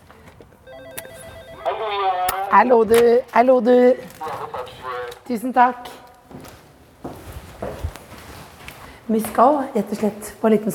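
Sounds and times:
two-part electronic doorbell chime indoors at a home: 0:00.7 - 0:01.7
speech: 0:01.9 - 0:04.1, 0:05.3 - 0:05.9, 0:09.1 - 0:10.7.

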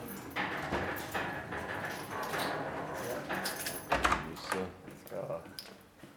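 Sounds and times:
sharp clunks and rattles: 0:00.2 - 0:04.3
basement archive door opening and closing: 0:00.4 - 0:04.6.

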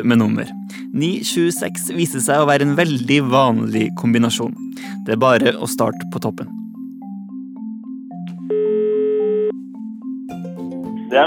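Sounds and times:
speech: 0:00.0 - 0:06.6
telephone ringback tone during a phone call: 0:08.4 - 0:09.6.

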